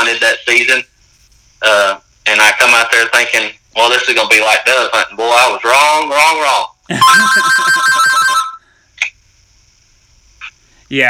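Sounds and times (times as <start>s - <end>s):
speech: 0.5s - 0.9s, 1.6s - 8.2s
mobile phone ringtone with a repeating electronic melody: 7.0s - 8.6s.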